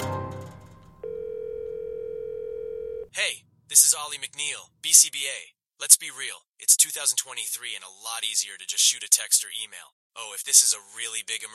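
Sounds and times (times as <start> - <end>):
telephone tone on a call to a voicemail line: 1.0 - 3.1
speech: 3.2 - 11.5.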